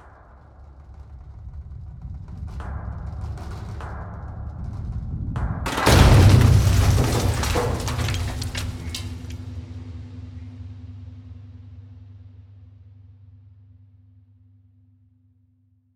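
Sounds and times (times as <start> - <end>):
pipe breaking: 5.7 - 9.4.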